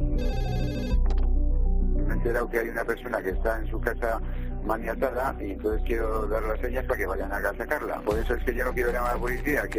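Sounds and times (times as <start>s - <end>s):
telephone melodic ringtone for an incoming call: 0.2s - 1.1s
speech: 2.2s - 9.7s.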